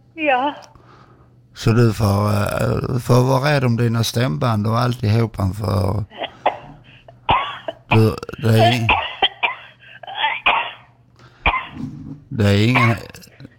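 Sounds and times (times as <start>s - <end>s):
speech: 0.2s - 0.7s, 1.6s - 6.2s, 7.9s - 9.0s, 12.4s - 13.3s
gravelly vocal noise: 1.6s - 3.2s, 7.9s - 9.0s, 12.4s - 13.5s
person coughing in harsh chesty bursts: 6.1s - 11.9s, 12.6s - 13.5s.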